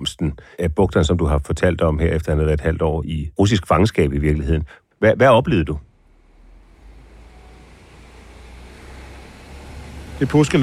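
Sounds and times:
speech: 0:00.0 - 0:05.9, 0:10.2 - 0:10.6
low continuous rumble of traffic in a residential street: 0:05.3 - 0:10.6.

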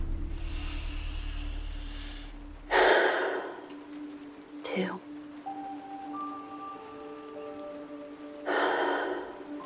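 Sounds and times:
low steady hum: 0:00.0 - 0:04.8
deep breath during a guided breathing pause: 0:00.2 - 0:03.8, 0:08.5 - 0:09.5
speech: 0:04.8 - 0:05.1.

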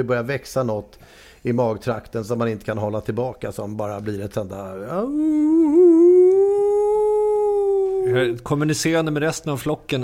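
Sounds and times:
speech: 0:00.0 - 0:05.9, 0:08.0 - 0:10.0
person imitating a wolf howl: 0:04.9 - 0:08.4.

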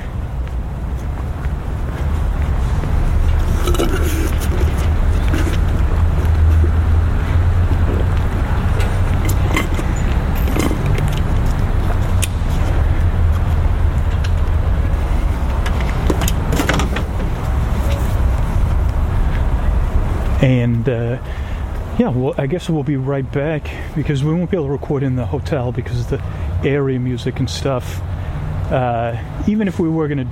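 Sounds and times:
wind buffeting the microphone: 0:00.0 - 0:22.1
bus engines and passing road traffic rumbling: 0:00.0 - 0:30.2
speech: 0:22.0 - 0:28.1, 0:28.7 - 0:30.2.

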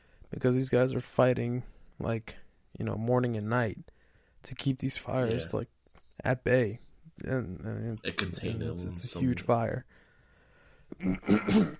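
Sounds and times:
speech: 0:00.3 - 0:10.0, 0:10.9 - 0:11.7
throaty coughs: 0:11.0 - 0:11.7.

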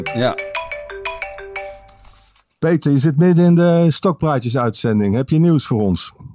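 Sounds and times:
speech: 0:00.0 - 0:00.5, 0:02.6 - 0:06.2
telephone ringtone with bright electronic melody: 0:00.0 - 0:02.3.

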